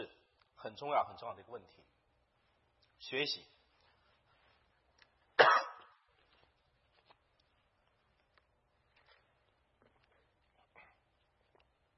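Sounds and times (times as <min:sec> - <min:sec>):
speech: 0:00.6 - 0:02.0, 0:03.0 - 0:03.6
cough: 0:05.4 - 0:06.0.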